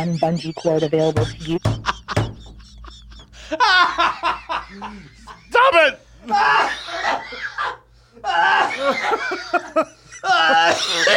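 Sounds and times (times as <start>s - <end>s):
speech: 0.0s - 2.3s, 3.5s - 11.1s
hearty laughter from a couple of people: 0.0s - 11.1s
short cough: 10.4s - 11.1s.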